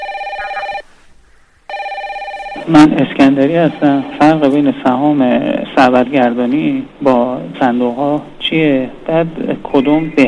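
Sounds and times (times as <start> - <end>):
telephone ringing with electronic trills for an incoming call: 0.0 - 0.8, 1.7 - 4.4
speech: 2.6 - 10.2.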